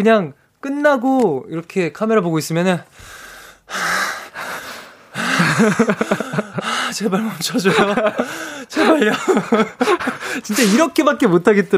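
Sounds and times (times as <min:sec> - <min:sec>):
speech: 0:00.0 - 0:04.0, 0:05.6 - 0:11.7
heavy panting after intense dancing: 0:03.0 - 0:07.0, 0:07.8 - 0:10.9
laughter: 0:05.2 - 0:10.8.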